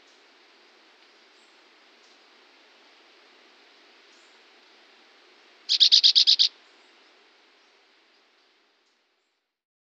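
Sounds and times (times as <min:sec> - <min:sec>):
faint steady hiss: 0:00.0 - 0:09.6
chestnut-bellied euphonia call: 0:05.7 - 0:06.5.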